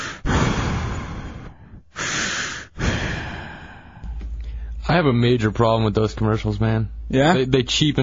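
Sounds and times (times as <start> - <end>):
voice imitating heavy raspy masked respirator breathing: 0.0 - 4.8
speech: 4.9 - 8.0.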